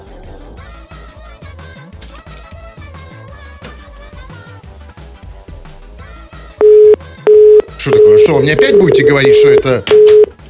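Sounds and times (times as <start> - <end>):
telephone line tone after dialing: 6.6 - 10.4
speech: 7.8 - 10.1.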